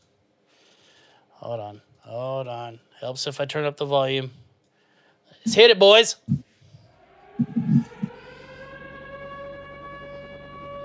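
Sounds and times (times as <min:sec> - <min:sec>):
speech: 0:01.4 - 0:04.4, 0:05.4 - 0:06.4
tornado siren wailing: 0:05.5 - 0:10.8
low thumps: 0:06.2 - 0:08.3.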